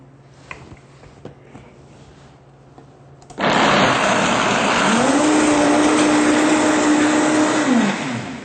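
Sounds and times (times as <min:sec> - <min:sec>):
blender pulverizing macadamia nuts: 0:03.4 - 0:08.4.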